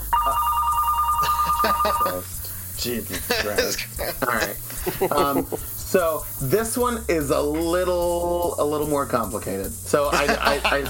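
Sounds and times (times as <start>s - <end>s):
telephone ringing with electronic tone: 0.0s - 2.2s
laughter: 1.2s - 2.2s, 3.1s - 5.7s, 10.1s - 10.8s
speech: 1.6s - 10.8s.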